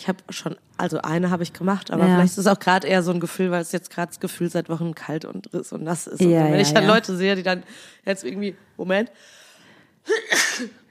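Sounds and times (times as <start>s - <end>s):
speech: 0.0s - 9.4s, 10.0s - 10.8s
person sneezing: 10.1s - 10.8s.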